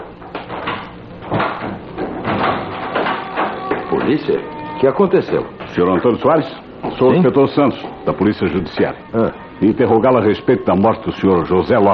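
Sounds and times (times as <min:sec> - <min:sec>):
wooden door opening: 0:00.0 - 0:10.1
rattling knocks and scrapes of wood and latch: 0:00.3 - 0:04.2
speech: 0:04.1 - 0:11.9.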